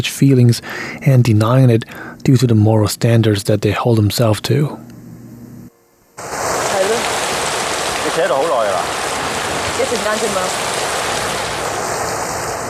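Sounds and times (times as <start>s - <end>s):
speech: 0.0s - 4.9s, 8.2s - 8.7s, 9.9s - 10.8s
heavy rain pouring in a film scene: 6.2s - 12.6s.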